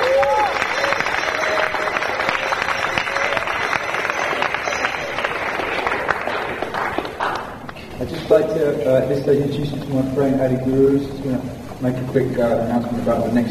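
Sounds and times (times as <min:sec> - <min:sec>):
audience applause at a devotees' event: 0:00.0 - 0:09.1
speech: 0:08.3 - 0:13.5.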